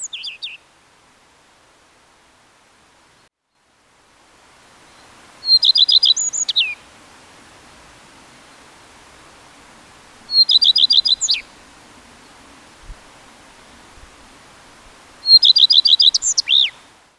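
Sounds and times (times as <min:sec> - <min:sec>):
black redstart singing: 0:00.0 - 0:00.6, 0:04.9 - 0:06.8, 0:10.3 - 0:11.5, 0:15.2 - 0:16.8.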